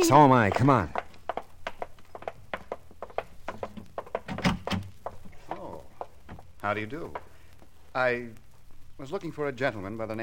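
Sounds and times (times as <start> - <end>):
speech: 0.0 - 1.0, 6.7 - 7.2, 8.0 - 8.4, 9.0 - 10.2
footsteps crossing a room: 0.0 - 7.9
front door swinging open with a wooden thunk: 4.2 - 4.9.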